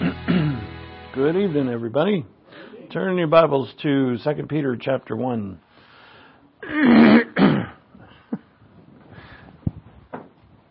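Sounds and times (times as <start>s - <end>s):
throat clearing to work out phlegm: 0.0s - 0.6s, 6.6s - 7.8s
speech: 1.2s - 5.6s, 6.6s - 7.2s.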